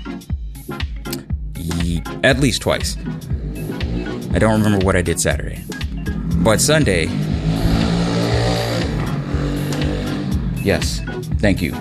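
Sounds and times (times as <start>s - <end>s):
speech: 1.7s - 3.4s, 4.3s - 5.8s, 6.4s - 7.3s, 10.6s - 11.8s
loud motorcycle engine rumbling: 3.0s - 11.0s.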